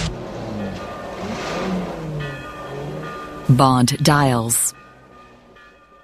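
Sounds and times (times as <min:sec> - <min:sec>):
car engine revving and accelerating onto a road: 0:00.0 - 0:03.2
speech: 0:03.5 - 0:04.6.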